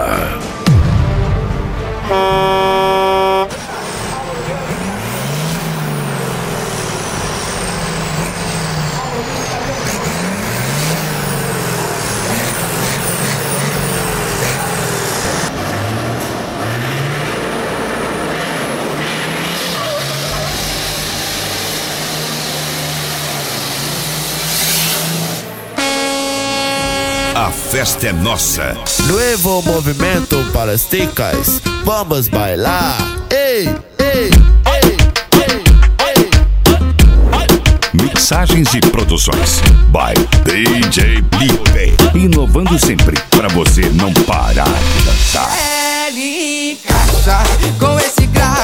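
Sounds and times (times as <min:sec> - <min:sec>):
heavy trucks revving and accelerating at a truck drag race: 0:00.0 - 0:48.6
air horn blaring: 0:01.7 - 0:03.9, 0:19.5 - 0:32.0
speech: 0:27.8 - 0:33.9, 0:38.3 - 0:45.6, 0:47.3 - 0:48.6.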